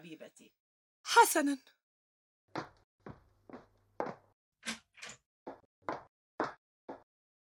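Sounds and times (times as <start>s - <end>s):
speech: 0.0s - 1.7s
door being unlocked and opened: 4.6s - 5.2s.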